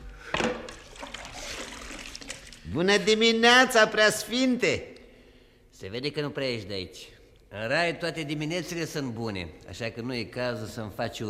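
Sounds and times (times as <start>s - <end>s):
water splashing as someone washes their face from a wooden jug: 0.7s - 2.7s
speech: 2.7s - 4.9s, 5.8s - 11.2s.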